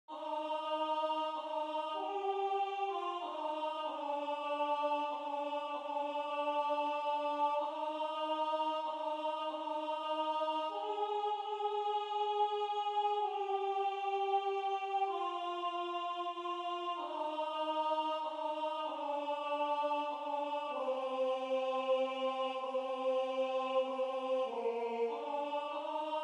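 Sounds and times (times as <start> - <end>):
alto voice singing: 0.1 - 26.2.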